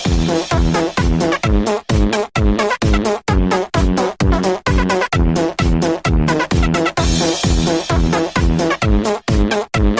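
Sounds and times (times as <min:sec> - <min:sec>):
beat made of fart sounds: 0:00.0 - 0:09.9.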